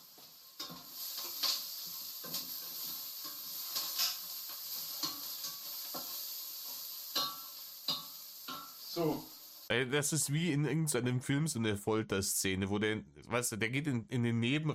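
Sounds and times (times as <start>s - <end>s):
onion frying in a pan: 0.0s - 9.7s
speech: 9.0s - 14.7s.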